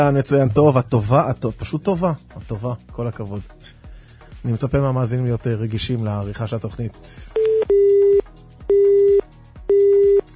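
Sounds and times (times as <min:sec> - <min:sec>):
speech: 0:00.0 - 0:03.6, 0:04.4 - 0:07.5
telephone busy signal: 0:07.4 - 0:10.3.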